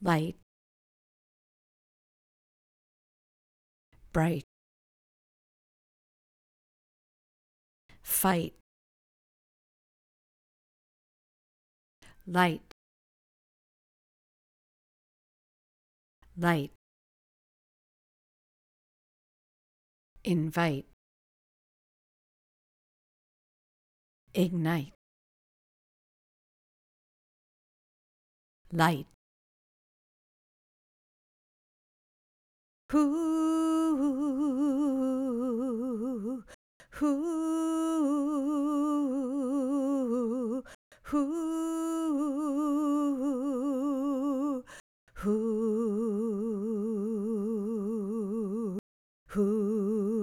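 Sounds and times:
vocals: 0:00.0 - 0:00.4, 0:04.0 - 0:04.5, 0:07.9 - 0:08.6, 0:12.0 - 0:12.8, 0:16.2 - 0:16.8, 0:20.2 - 0:21.0, 0:24.3 - 0:25.0, 0:28.7 - 0:29.2, 0:32.9 - 0:50.2.

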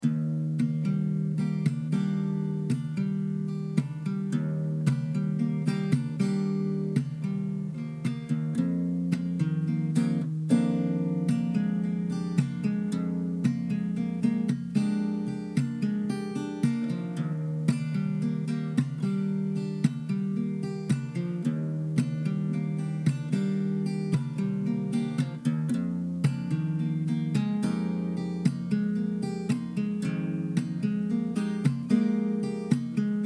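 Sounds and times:
acoustic guitar chill groove: 0:00.0 - 0:33.2.

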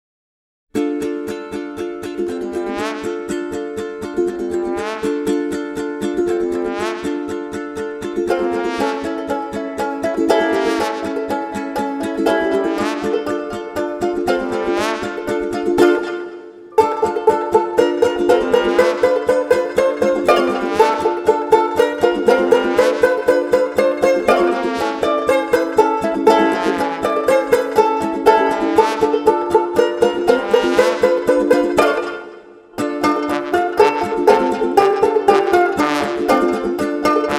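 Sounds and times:
ukulele: 0:00.7 - 0:37.3
trombone: 0:02.5 - 0:03.4, 0:04.5 - 0:05.4, 0:06.5 - 0:07.4, 0:08.3 - 0:11.4, 0:12.3 - 0:32.3, 0:33.0 - 0:37.3.

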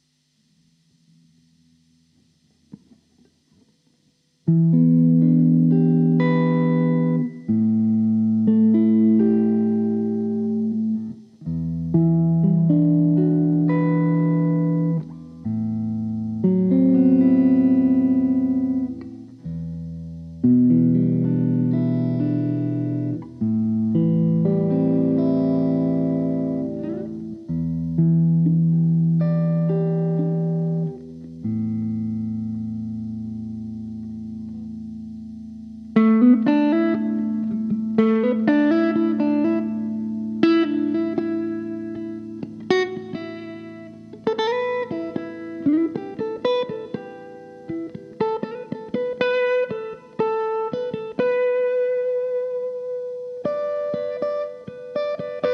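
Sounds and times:
wet electric guitar solo in E minor at 120 BPM: 0:00.9 - 0:55.5.

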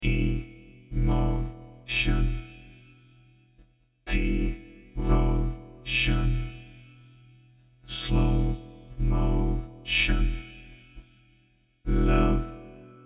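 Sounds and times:
emotional vocoder voice in E minor at 120 BPM: 0:00.0 - 0:03.0, 0:04.1 - 0:07.0, 0:07.9 - 0:11.1, 0:11.9 - 0:13.0.

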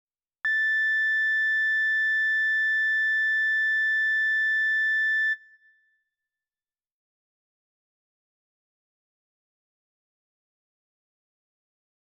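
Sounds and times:
quick slow emergency tone: 0:00.5 - 0:06.0.

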